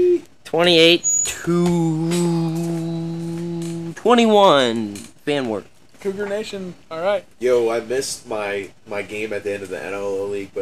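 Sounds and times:
small bird cooing: 0:00.0 - 0:00.3, 0:01.0 - 0:04.0
speech: 0:00.5 - 0:02.8, 0:04.0 - 0:10.5.

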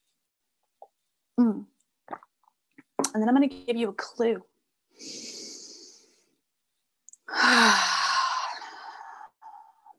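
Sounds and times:
speech: 0:01.4 - 0:02.2, 0:03.1 - 0:05.3, 0:07.6 - 0:07.9
soft inhale and long deep audible exhale: 0:04.9 - 0:06.4, 0:07.3 - 0:09.9.

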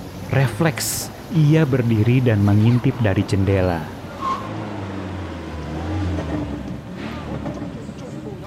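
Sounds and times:
Katana car engine rumbling while pulling up and parking in front of a house: 0:00.0 - 0:08.4
speech: 0:00.3 - 0:04.0.

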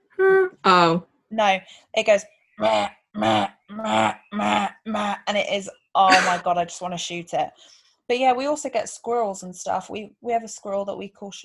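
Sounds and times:
speech: 0:00.2 - 0:11.4
person imitating crow caws: 0:02.6 - 0:04.8, 0:06.1 - 0:06.4.

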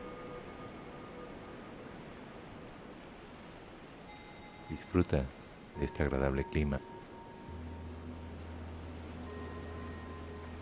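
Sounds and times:
soft ocean surf: 0:00.0 - 0:10.6
speech: 0:04.7 - 0:06.9.

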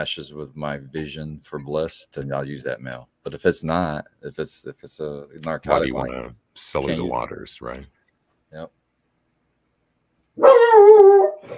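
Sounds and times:
speech: 0:00.0 - 0:08.8
dog barking with a sustained whining tone: 0:10.4 - 0:11.5.

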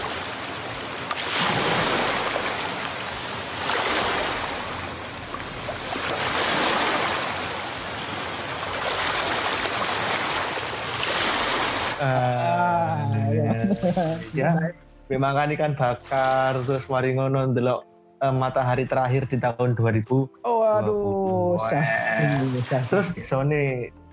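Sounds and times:
ocean waves washing onto Jimbaran beach: 0:00.0 - 0:14.6, 0:22.1 - 0:23.1
laughter: 0:12.0 - 0:14.7, 0:20.7 - 0:23.3
speech: 0:13.9 - 0:24.0.

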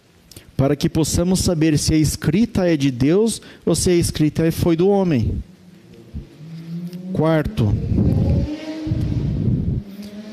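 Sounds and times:
speech: 0:00.6 - 0:05.5, 0:07.1 - 0:08.2
loud engine rumbling outdoors: 0:05.1 - 0:10.3
wind noise: 0:05.2 - 0:05.5, 0:07.4 - 0:10.0.

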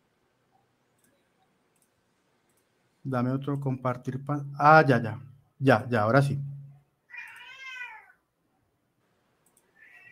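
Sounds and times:
speech: 0:03.0 - 0:06.5
cat meowing: 0:07.1 - 0:08.2, 0:09.8 - 0:10.0.

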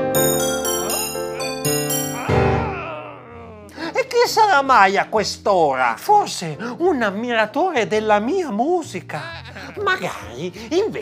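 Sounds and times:
melodic doorbell chime: 0:00.2 - 0:02.8
speech: 0:04.3 - 0:11.0.

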